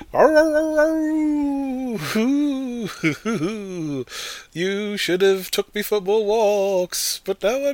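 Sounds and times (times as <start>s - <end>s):
person imitating a ghostly dog howl: 0.0s - 2.9s
speech: 0.1s - 7.7s
laughter: 2.0s - 4.0s.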